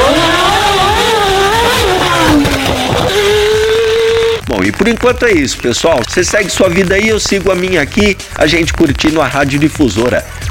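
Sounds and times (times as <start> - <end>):
racing car engine at full throttle: 0.0 - 8.4
speech: 4.8 - 10.4.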